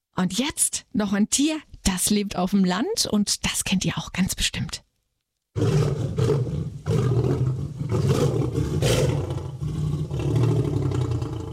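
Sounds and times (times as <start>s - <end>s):
speech: 0.2s - 4.8s, 5.6s - 6.5s
lion roaring: 5.6s - 11.5s.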